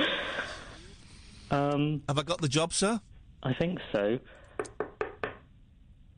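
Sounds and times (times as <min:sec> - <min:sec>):
speech: 0:01.5 - 0:04.8
sharp knocks on a door: 0:04.6 - 0:05.5.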